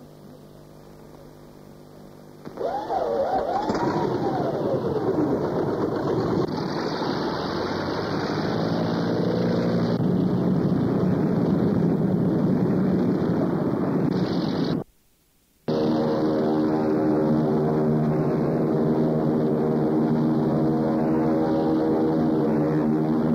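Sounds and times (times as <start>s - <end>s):
propeller aircraft flying over a combat zone: 2.5s - 14.8s, 15.7s - 23.3s.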